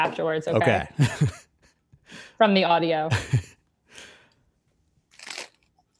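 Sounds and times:
speech: 0.0s - 1.4s, 2.1s - 3.4s
laughter: 0.6s - 1.5s, 3.1s - 3.6s
crunchy bite of cheese sandwich with romaine lettuce: 5.1s - 5.9s
faint chewing: 5.1s - 5.9s.

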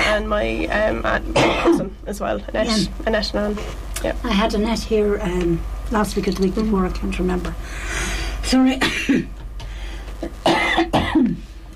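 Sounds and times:
speech: 0.2s - 9.4s, 10.2s - 11.5s
person in a harsh coughing fit: 1.4s - 1.9s, 8.8s - 9.3s, 10.2s - 11.4s.

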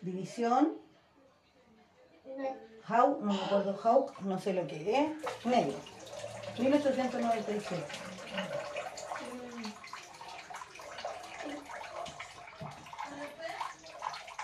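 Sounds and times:
speech: 0.0s - 0.8s, 2.3s - 5.9s, 6.6s - 8.8s
child splashing water in a bathtub: 3.4s - 14.4s.

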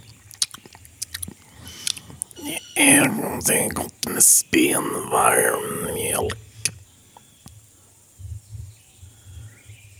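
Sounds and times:
wet mouth smacking: 0.0s - 2.4s
breathy hiss: 1.4s - 6.4s
speech: 2.4s - 6.4s.

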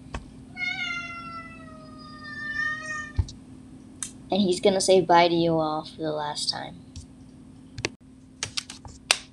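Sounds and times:
low hum: 0.0s - 9.3s
male domestic cat meowing: 0.5s - 3.3s
speech: 4.3s - 6.8s.

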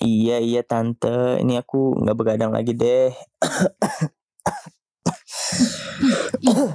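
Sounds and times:
speech: 0.0s - 4.8s, 5.5s - 6.7s
person coughing in sharp bursts with a raspy throaty hack: 3.3s - 6.7s.

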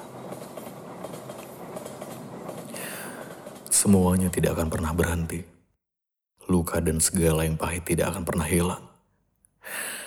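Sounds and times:
train wheels clattering over rails: 0.0s - 5.2s
train passing at speed: 0.0s - 5.4s
speech: 3.8s - 5.6s, 6.6s - 8.9s.

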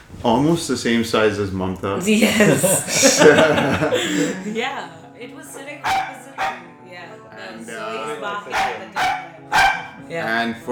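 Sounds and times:
speech: 0.2s - 10.6s
laughter: 2.0s - 4.9s
dog barking: 5.8s - 6.7s, 8.5s - 10.0s
dog whining and yelping: 8.6s - 10.0s.

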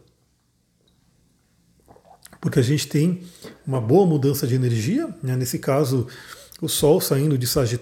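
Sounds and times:
sipping and swallowing water: 1.8s - 2.4s
speech: 2.4s - 7.8s.

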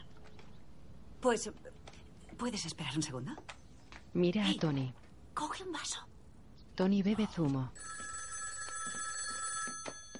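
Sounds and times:
speech: 1.2s - 6.1s, 6.8s - 8.0s
telephone ringing with bright electronic trill: 7.8s - 10.1s.

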